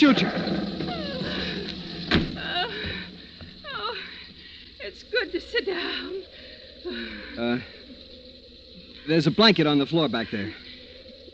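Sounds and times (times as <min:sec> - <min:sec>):
speech: 0:00.0 - 0:00.6, 0:04.9 - 0:07.8, 0:09.0 - 0:10.6
door creaks and squeaks: 0:00.0 - 0:03.6
low rumble: 0:00.0 - 0:11.3.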